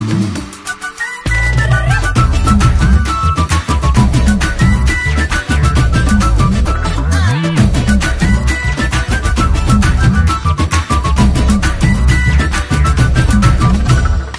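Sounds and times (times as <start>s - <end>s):
instrumental flute music: 0.0s - 14.3s.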